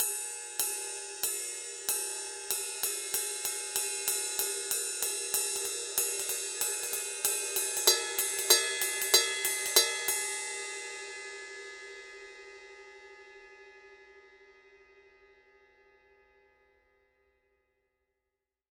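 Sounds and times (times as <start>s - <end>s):
PST 5 medium ride cymbal: 0.0s - 16.3s.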